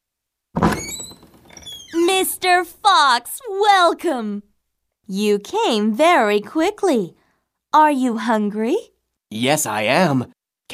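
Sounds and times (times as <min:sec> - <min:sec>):
door opening thunk: 0:00.6 - 0:02.0
creaky door hinges squealing: 0:00.6 - 0:02.1
speech: 0:02.2 - 0:04.5, 0:05.1 - 0:10.7.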